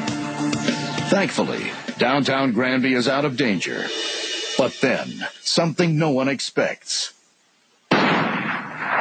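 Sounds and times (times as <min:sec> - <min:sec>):
speech: 0:01.1 - 0:07.2
gunshot inside bulldozer: 0:07.9 - 0:08.9.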